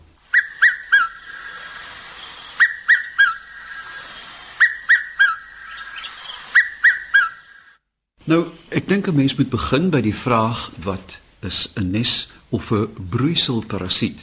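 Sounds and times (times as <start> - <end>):
birdsong: 0.2 - 7.8
red-chested cuckoo calling its three-note descending whistle: 0.2 - 7.8
speech: 8.3 - 14.2.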